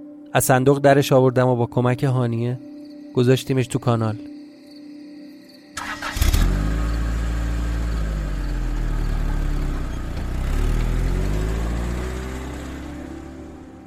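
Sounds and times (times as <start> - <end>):
speech: 0.3 - 4.3
car engine cranking and catching: 5.8 - 13.8.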